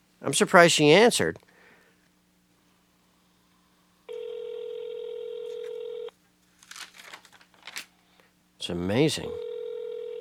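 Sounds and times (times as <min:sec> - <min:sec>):
speech: 0:00.2 - 0:01.5, 0:08.7 - 0:09.5
telephone call ringing with electronic tone: 0:04.1 - 0:06.1, 0:09.3 - 0:10.1.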